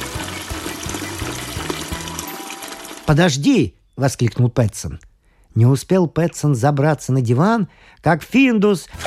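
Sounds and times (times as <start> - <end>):
warm water poured into a bucket: 0.0 - 3.3
speech: 3.1 - 9.0.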